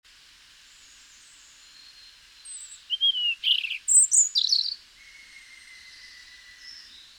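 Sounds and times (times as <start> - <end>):
faint hiss: 0.1 - 7.1
European robin Erithacus rubecula song: 2.4 - 7.1.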